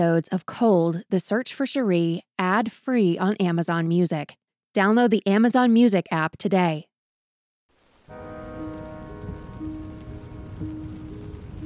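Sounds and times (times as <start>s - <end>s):
speech: 0.0s - 6.9s
steady rain pattering on a canvas top: 7.7s - 11.6s
sustained low musical drone: 8.1s - 11.6s.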